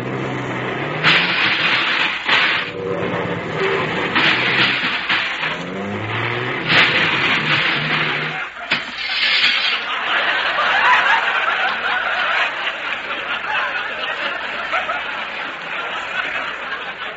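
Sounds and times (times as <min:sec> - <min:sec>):
bus mechanical clatter: 0:00.0 - 0:09.8
bus hissing bursts: 0:00.0 - 0:09.9
heavy bus engine revving while parking: 0:00.0 - 0:10.6
laughter: 0:05.3 - 0:17.1.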